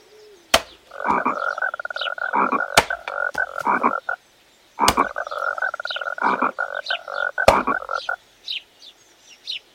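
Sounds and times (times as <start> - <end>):
raspy frog croaking: 0.6 - 8.3.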